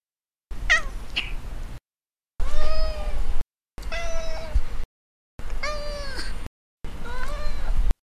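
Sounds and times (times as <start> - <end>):
cat meowing: 0.7 - 1.3, 2.4 - 3.2, 3.8 - 4.6, 5.6 - 6.3, 7.0 - 7.8.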